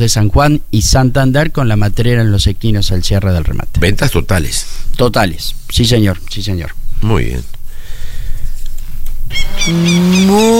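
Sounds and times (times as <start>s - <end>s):
speech: 0.0s - 7.6s, 9.3s - 10.5s
cow in Uruguay mooing: 9.4s - 10.5s.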